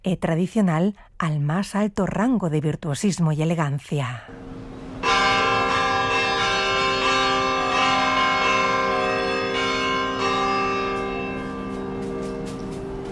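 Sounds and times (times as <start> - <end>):
speech: 0.0 - 4.5
church bells pealing: 4.4 - 13.1.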